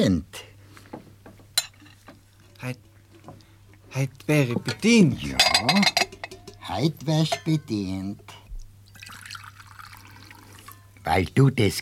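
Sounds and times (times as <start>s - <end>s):
speech: 0.0s - 0.4s, 2.6s - 2.8s, 3.9s - 6.0s, 6.7s - 8.3s, 11.1s - 11.7s
spoon stirring cocoa powder into a cup of milk: 5.4s - 7.7s.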